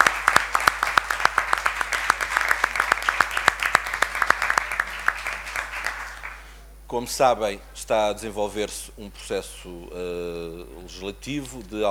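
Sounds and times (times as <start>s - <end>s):
audience applauding in a room: 0.0s - 6.5s
speech: 6.9s - 11.8s.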